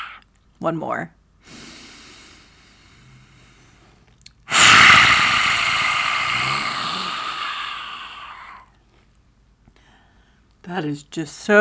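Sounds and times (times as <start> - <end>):
speech: 0.6 - 1.2, 10.7 - 11.5
long forceful hissing exhale through the nose in breath of fire exercise: 1.4 - 3.9, 4.5 - 8.7
brief sniffing inhale in breath of fire breathing exercise: 1.4 - 8.7.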